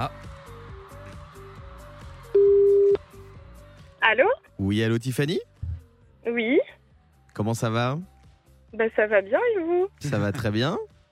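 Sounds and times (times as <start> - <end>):
speech: 0.0 - 0.3, 4.0 - 5.5, 6.2 - 6.8, 7.4 - 8.1, 8.7 - 10.9
ringing tone of an outgoing telephone call: 2.4 - 3.0.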